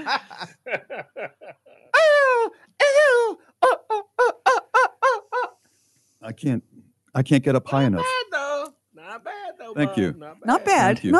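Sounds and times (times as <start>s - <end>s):
speech: 0.0s - 1.6s, 6.4s - 8.2s, 9.8s - 11.1s
laughter: 0.0s - 5.5s
person imitating chicken squawks: 2.0s - 5.5s.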